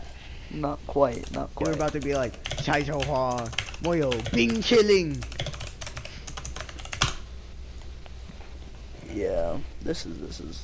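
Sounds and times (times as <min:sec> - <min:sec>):
speech: 0:00.5 - 0:05.4, 0:09.2 - 0:10.6
typing on a computer keyboard: 0:01.1 - 0:07.2.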